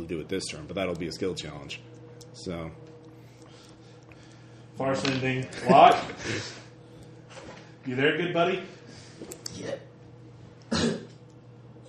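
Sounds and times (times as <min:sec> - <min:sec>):
speech: 0:00.0 - 0:02.9, 0:04.8 - 0:06.6, 0:07.9 - 0:09.8
low steady hum: 0:00.0 - 0:11.8
person coughing: 0:10.7 - 0:11.2.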